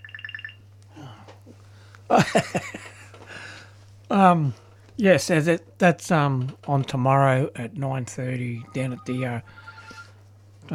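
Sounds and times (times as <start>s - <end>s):
mobile phone ringing: 0.0s - 0.6s, 8.6s - 10.2s
steady low electrical hum: 0.0s - 10.7s
speech: 2.1s - 2.8s, 4.1s - 9.7s.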